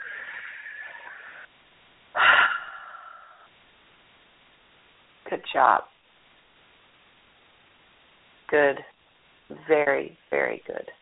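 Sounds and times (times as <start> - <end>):
breathing during a guided breathing exercise: 0.0 - 1.5, 2.1 - 3.6
speech: 5.3 - 5.9, 8.5 - 8.9, 9.5 - 11.0.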